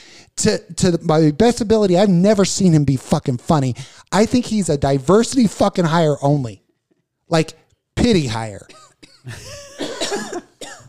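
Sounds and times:
speech: 0.4 - 6.6, 7.3 - 10.5
person coughing harshly: 8.6 - 10.8.

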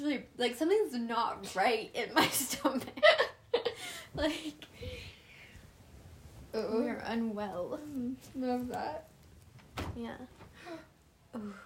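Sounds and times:
speech: 0.2 - 5.1, 6.5 - 9.1, 9.8 - 11.6
door creaking: 9.4 - 10.8
door bumping: 9.5 - 10.6.

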